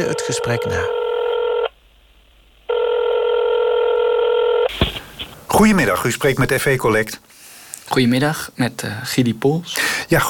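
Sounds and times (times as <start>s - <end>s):
speech: 0.0s - 1.0s, 5.5s - 10.2s
telephone line tones on a call to a debt collection agency: 0.0s - 1.7s, 2.7s - 4.7s.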